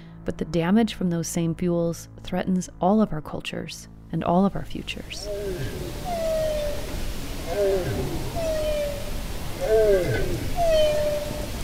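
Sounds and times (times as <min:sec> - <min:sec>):
speech: 0:00.2 - 0:06.1
steady underwater hiss and low rumble: 0:05.0 - 0:11.6
bowhead whale tonal moans: 0:05.1 - 0:11.6.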